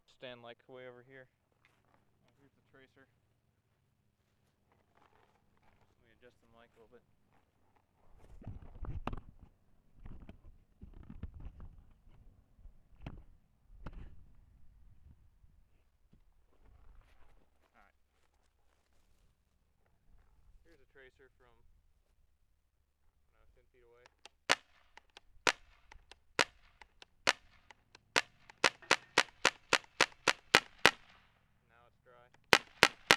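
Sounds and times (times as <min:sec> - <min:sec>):
shotgun shot: 0:24.1 - 0:31.2, 0:32.5 - 0:33.1.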